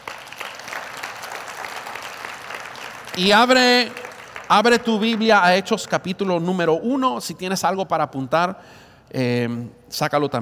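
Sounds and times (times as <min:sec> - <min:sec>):
audience applauding: 0:00.0 - 0:05.9
speech: 0:03.2 - 0:10.3.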